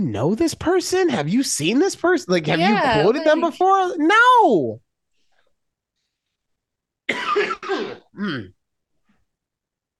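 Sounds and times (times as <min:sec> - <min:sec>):
speech: 0:00.0 - 0:04.8, 0:07.7 - 0:08.6
person coughing phlegmy and wet: 0:07.1 - 0:08.6
phlegmy throat clearing: 0:07.1 - 0:08.6.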